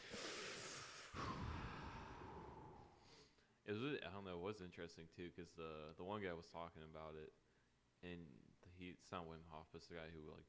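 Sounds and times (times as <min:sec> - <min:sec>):
heavy breathing: 0:00.0 - 0:03.5
speech: 0:03.7 - 0:07.4, 0:08.0 - 0:10.4.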